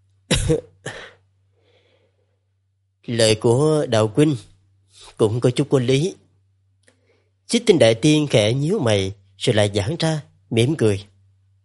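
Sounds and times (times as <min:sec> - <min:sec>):
soft cough: 0:00.3 - 0:01.2
speech: 0:00.5 - 0:01.0, 0:03.1 - 0:06.2, 0:07.5 - 0:11.1.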